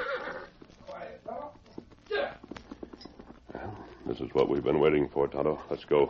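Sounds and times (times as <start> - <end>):
horse whinnying in shrill wavering bursts: 0.0 - 0.8, 2.0 - 4.0
clopping horse hoofbeats: 0.0 - 6.0
speech: 4.2 - 6.0.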